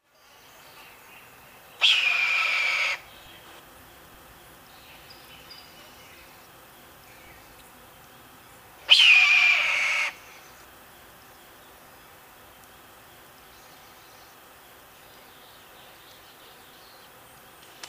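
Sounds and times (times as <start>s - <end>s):
red-tailed hawk calling: 1.8s - 3.1s, 8.9s - 10.2s.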